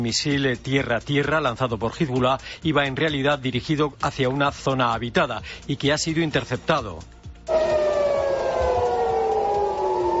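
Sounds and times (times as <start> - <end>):
speech: 0.0 - 7.7
air-raid sirens wailing: 7.5 - 10.1.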